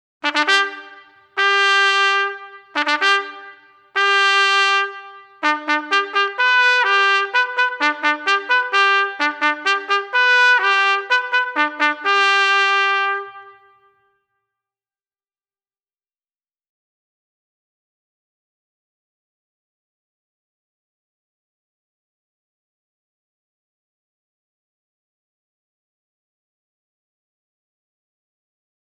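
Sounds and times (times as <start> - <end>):
bugle call: 0.2 - 13.9.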